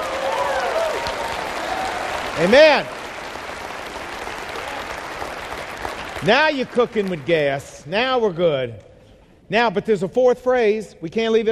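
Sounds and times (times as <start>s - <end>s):
crowd applauding: 0.0s - 7.8s
speech: 2.4s - 3.0s, 6.2s - 8.9s, 9.5s - 11.4s.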